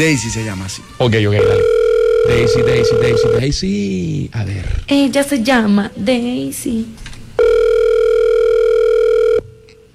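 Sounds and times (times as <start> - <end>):
speech: 0.0 - 7.1
faint hum: 0.8 - 9.9
telephone ringing with a single steady electronic tone: 1.4 - 3.4, 7.4 - 9.6.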